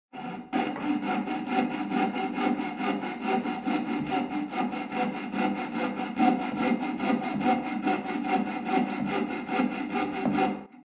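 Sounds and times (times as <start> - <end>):
jigsaw cutting: 0.2 - 10.7.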